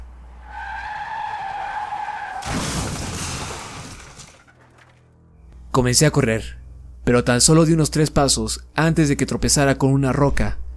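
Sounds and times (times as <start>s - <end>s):
car screeching with a high-pitched squeal: 0.0s - 5.0s
violent car crash with crunching and shattering debris: 0.5s - 5.2s
speech: 5.8s - 10.6s.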